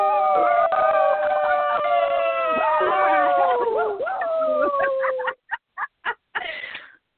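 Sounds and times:
several voices imitating werewolf howls: 0.0 - 5.4
bursts of laughter: 2.3 - 6.6.

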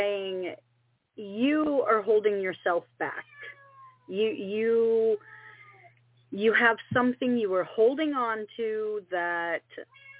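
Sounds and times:
quiet hum: 0.0 - 10.1
speech: 1.6 - 5.4, 6.3 - 10.1
cat yowling angrily: 3.2 - 4.1, 9.9 - 10.1.

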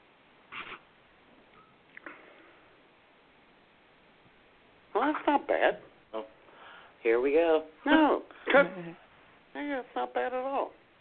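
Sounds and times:
person sniffing a 9% alcohol beer: 0.5 - 0.8
speech: 5.0 - 6.3, 7.0 - 9.0, 9.6 - 10.8.

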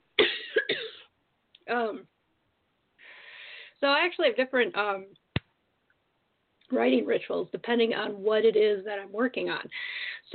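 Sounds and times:
person coughing harshly: 0.2 - 1.1
speech: 1.7 - 2.1, 3.8 - 5.2, 6.7 - 10.3.

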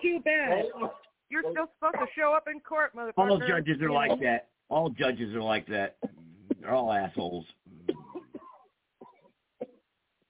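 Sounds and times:
speech: 0.2 - 7.6
person coughing: 0.5 - 1.0, 1.9 - 2.2, 6.0 - 9.8.

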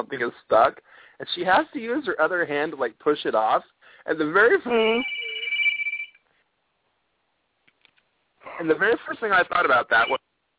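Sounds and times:
speech: 0.0 - 5.2, 8.5 - 10.3
phone ringtone at home: 4.8 - 6.2, 9.9 - 10.2.

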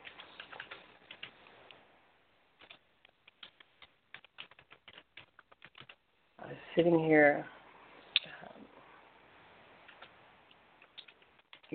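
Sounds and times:
rapid uneven keyboard typing: 0.0 - 1.4, 2.6 - 6.0, 9.8 - 11.7
speech: 6.5 - 7.6.

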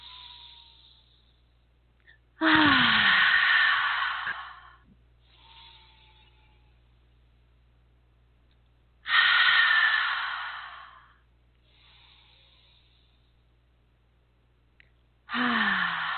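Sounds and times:
deep breaths in and out: 0.0 - 6.6, 9.0 - 13.5, 15.3 - 16.1.

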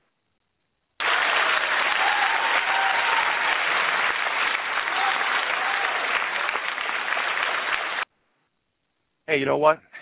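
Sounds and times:
canned applause: 1.0 - 8.1
speech: 9.3 - 9.9.

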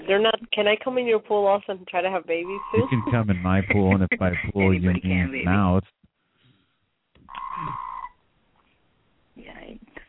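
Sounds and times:
speech: 0.1 - 6.0, 7.6 - 7.9
frog croaking: 2.4 - 4.3, 7.3 - 8.2
laughter: 2.8 - 5.8.

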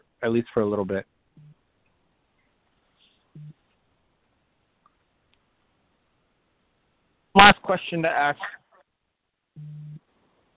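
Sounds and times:
hiss: 0.0 - 10.5
speech: 0.2 - 1.1, 7.4 - 8.6, 9.6 - 9.9
electronic phone beep: 9.6 - 10.0.

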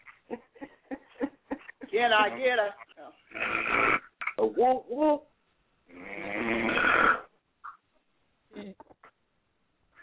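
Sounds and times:
speech: 2.0 - 5.3
snorting noises: 2.4 - 4.4, 5.9 - 7.8
person snoring: 3.3 - 4.1, 5.9 - 7.3.

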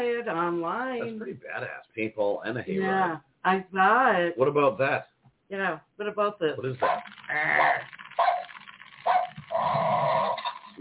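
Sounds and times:
speech: 0.0 - 8.0
animatronic Halloween skeleton dog toy barking from small built-in speaker: 6.8 - 10.6.

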